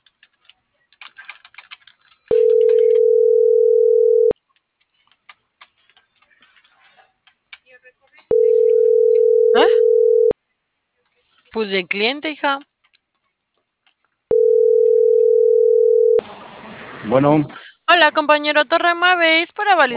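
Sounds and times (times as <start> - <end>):
telephone line tone beeps: 2.3 - 4.4, 8.3 - 10.3, 14.3 - 16.2
speech: 11.6 - 12.7, 17.1 - 19.9.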